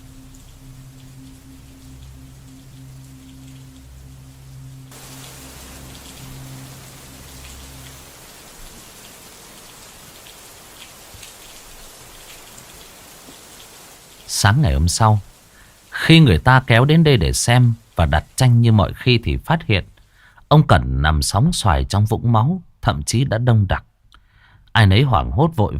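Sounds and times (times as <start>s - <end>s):
low sustained tone: 0.0s - 8.2s
heavy rain pouring on the tin roof of a small attic at night: 0.0s - 18.5s
speech: 14.3s - 15.3s, 16.1s - 19.9s, 20.5s - 23.9s, 24.8s - 25.7s.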